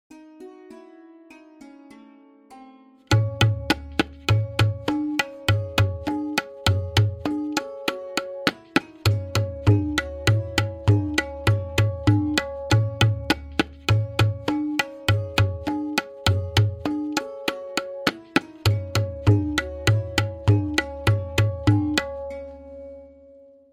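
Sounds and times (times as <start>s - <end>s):
Benares kaida variation in tintal: 0.1s - 23.4s
lehra melody: 0.1s - 23.7s.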